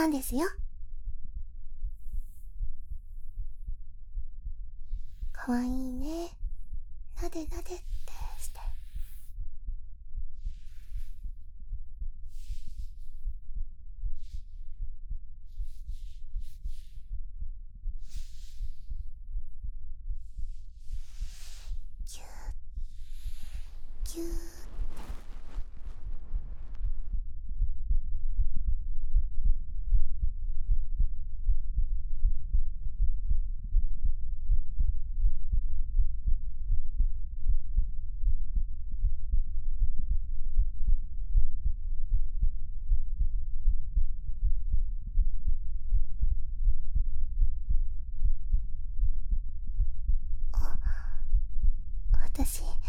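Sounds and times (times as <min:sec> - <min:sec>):
speech: 0:00.0 - 0:00.6, 0:05.4 - 0:06.4, 0:07.2 - 0:08.0
heartbeat thumping: 0:00.0 - 0:52.8
scratchy rustle: 0:22.9 - 0:27.0.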